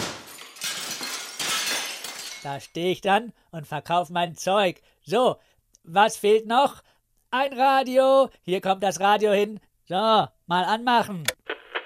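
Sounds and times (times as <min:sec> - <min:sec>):
glass fragments tinkling: 0:00.0 - 0:02.6
window glass of a caravan shattering as it is knocked out: 0:00.0 - 0:02.7
speech: 0:02.4 - 0:11.4.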